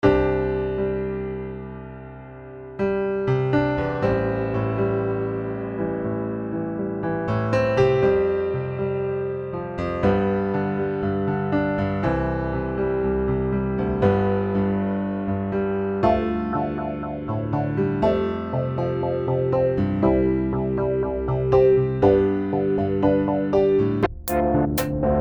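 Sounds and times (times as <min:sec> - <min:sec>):
filtered piano: 0:00.0 - 0:25.2.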